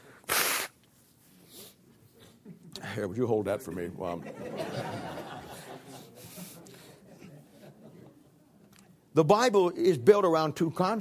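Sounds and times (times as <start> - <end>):
person blowing nose: 0.0 - 0.8
speech: 2.9 - 4.9, 9.2 - 10.9
laughter: 4.0 - 8.3.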